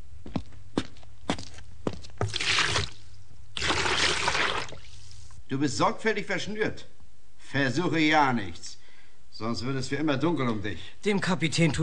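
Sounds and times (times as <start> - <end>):
bucket of water poured out in rushing splashes: 2.3 - 3.0, 3.6 - 5.3
speech: 5.5 - 8.7, 9.4 - 11.8.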